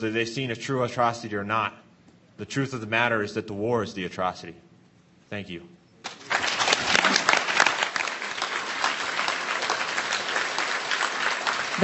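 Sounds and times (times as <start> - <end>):
speech: 0.0 - 1.8, 2.4 - 4.6, 5.3 - 5.8
large crowd applause in a standing ovation after testimony on a panel: 6.1 - 11.8.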